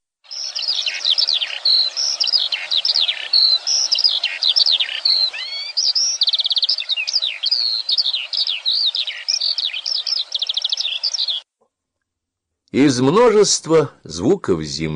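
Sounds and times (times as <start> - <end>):
skylark singing in the morning: 0.3 - 11.4
speech: 12.7 - 14.9.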